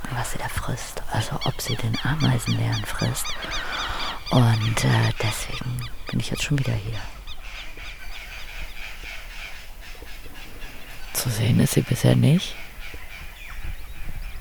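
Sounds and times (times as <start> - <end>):
man speaking quietly: 0.0 - 7.2, 11.1 - 12.6
speech: 0.2 - 7.2, 11.2 - 12.6
crows cawing loudly in a forest: 1.2 - 11.3.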